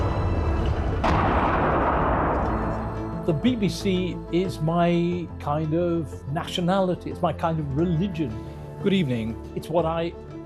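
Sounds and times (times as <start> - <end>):
fireworks booming at a Christian celebration in East Beirut: 0.7 - 2.9
loud sharp bang: 0.9 - 2.7
speech: 3.2 - 10.4.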